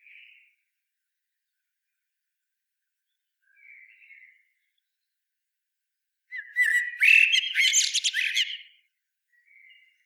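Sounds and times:
Common blackbird Turdus merula chattering phrase: 6.5 - 8.6.

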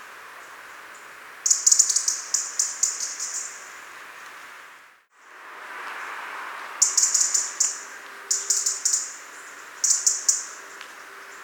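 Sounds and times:
constant background hiss: 0.0 - 11.4
European robin Erithacus rubecula calling with sharp ticks: 1.5 - 3.6, 6.8 - 11.4.

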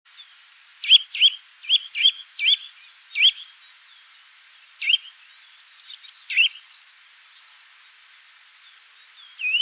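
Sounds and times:
Eurasian nuthatch Sitta europaea calling with whistled notes: 0.2 - 3.6, 4.8 - 6.8, 7.4 - 9.5.

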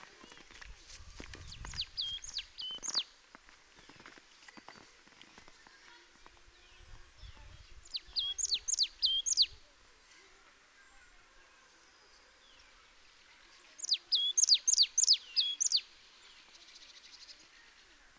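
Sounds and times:
marsh tit Poecile palustris calling: 1.4 - 3.1, 7.8 - 9.6, 13.8 - 15.9.

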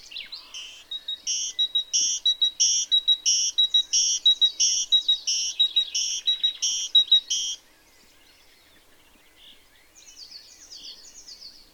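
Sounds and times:
great tit song: 0.0 - 7.6.

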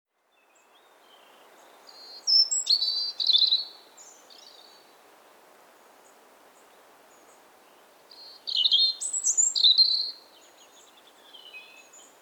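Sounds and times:
European robin Erithacus rubecula singing: 1.1 - 4.7, 8.2 - 12.1.

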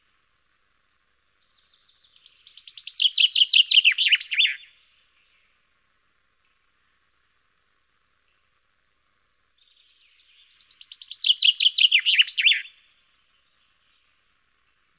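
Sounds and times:
common chaffinch singing: 0.0 - 5.4, 9.1 - 14.2.

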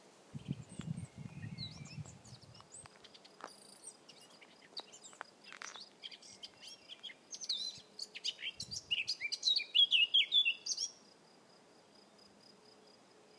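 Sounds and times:
Eurasian blackcap Sylvia atricapilla song: 0.4 - 11.0.

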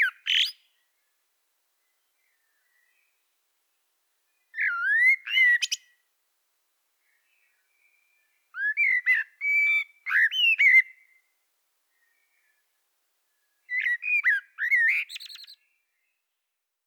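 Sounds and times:
Common blackbird Turdus merula giving fluty wavering whistled phrases: 0.0 - 0.6, 4.6 - 5.9, 8.6 - 11.2, 13.7 - 15.6.

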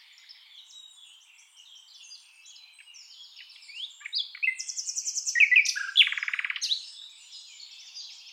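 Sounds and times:
Luscinia megarhynchos common nightingale singing: 0.0 - 8.3.

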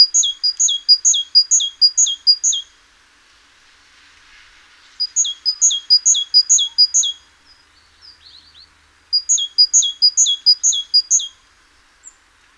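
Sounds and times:
great tit singing: 0.0 - 2.6, 5.0 - 7.2, 8.0 - 11.3.

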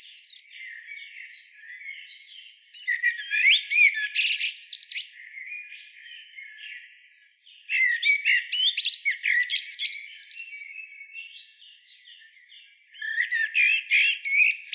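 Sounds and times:
Eurasian blackbird Turdus merula chirping and chattering: 0.0 - 0.6, 2.7 - 5.1, 7.7 - 10.6, 13.0 - 14.7.

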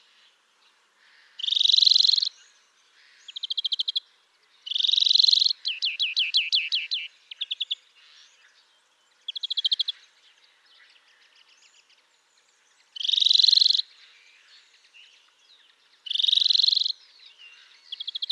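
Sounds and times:
European greenfinch Chloris chloris song with wheezy buzzes and trilled rattles: 0.0 - 18.3.

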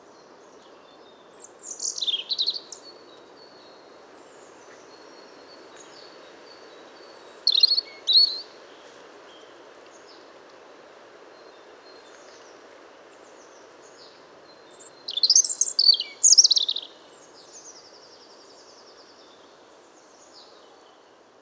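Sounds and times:
low background noise: 0.0 - 21.4
European robin singing: 0.1 - 3.8, 4.4 - 8.6, 13.4 - 21.0.

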